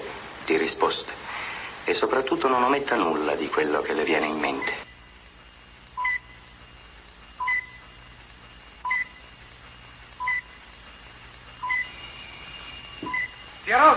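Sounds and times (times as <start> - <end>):
low hum: 0.0 - 13.9
speech: 0.5 - 1.2, 1.8 - 4.9
telephone ringing with two-tone electronic chirps: 11.6 - 13.9.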